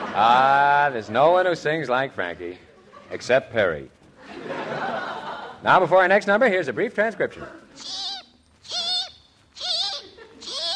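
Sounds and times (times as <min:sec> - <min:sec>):
laughter: 0:00.0 - 0:00.9, 0:02.6 - 0:03.5, 0:04.2 - 0:05.7, 0:09.8 - 0:10.7
speech: 0:00.2 - 0:04.9, 0:05.6 - 0:08.0
drawn-out high bird-like chirping calls: 0:07.8 - 0:10.7.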